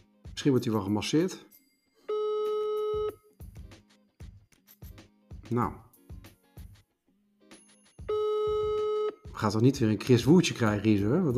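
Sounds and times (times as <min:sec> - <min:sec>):
speech: 0:00.4 - 0:01.6, 0:05.5 - 0:05.8, 0:09.4 - 0:11.3
electronic telephone ring tone on a call: 0:02.0 - 0:03.3, 0:08.0 - 0:09.3.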